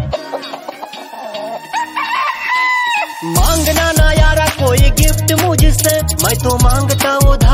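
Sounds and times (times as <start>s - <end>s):
steady music: 0.0s - 7.5s
rooster crowing: 0.1s - 3.3s
speech: 3.2s - 7.5s.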